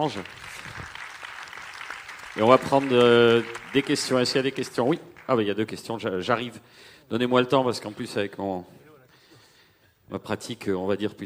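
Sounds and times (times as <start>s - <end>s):
speech: 0.0s - 0.5s, 2.4s - 8.8s, 10.1s - 11.2s
audience applause: 0.0s - 5.8s.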